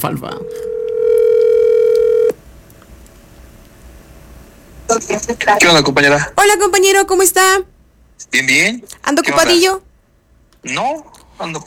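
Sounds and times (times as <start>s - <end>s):
speech: 0.0s - 0.7s, 5.0s - 9.9s, 10.6s - 11.6s
telephone tone as a call is placed: 0.3s - 2.4s.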